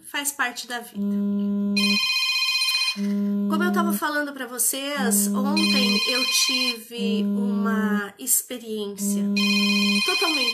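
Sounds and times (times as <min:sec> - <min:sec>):
speech: 0:00.1 - 0:01.5, 0:03.0 - 0:10.5
telephone ringing with electronic tone: 0:01.8 - 0:04.0, 0:05.0 - 0:07.9, 0:09.0 - 0:10.5.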